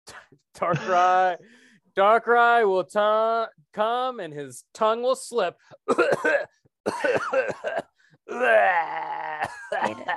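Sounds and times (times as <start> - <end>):
speech: 0.3 - 10.1
person coughing: 5.9 - 8.5, 9.2 - 10.1
person letting out a long strained groan: 8.3 - 10.1.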